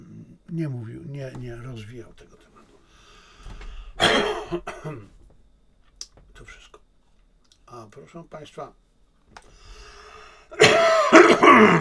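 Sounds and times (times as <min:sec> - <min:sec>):
speech: 0:00.5 - 0:02.5, 0:04.5 - 0:05.2, 0:07.7 - 0:09.6, 0:10.5 - 0:11.7
throat clearing: 0:03.4 - 0:05.2, 0:10.5 - 0:11.7
person coughing: 0:03.5 - 0:05.1, 0:10.5 - 0:11.7.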